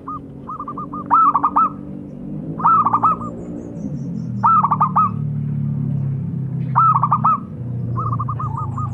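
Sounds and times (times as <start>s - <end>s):
zebra dove giving trilled stuttering lure coos: 0.0s - 3.6s, 4.4s - 5.3s, 6.6s - 8.9s
steady low hum: 0.0s - 8.9s.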